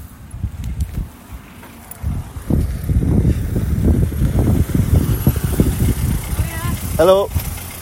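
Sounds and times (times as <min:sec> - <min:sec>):
car approaching on a road with low engine rumble: 0:00.0 - 0:07.8
gusty wind buffeting the microphone: 0:00.0 - 0:07.8
speech: 0:07.0 - 0:07.4.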